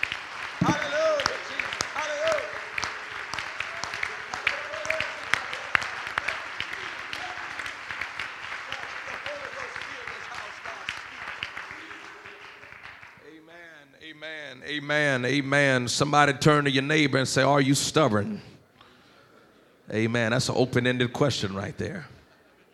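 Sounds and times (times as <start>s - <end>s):
audience clapping hands: 0.0s - 13.4s
speech: 14.9s - 18.5s, 19.9s - 22.1s.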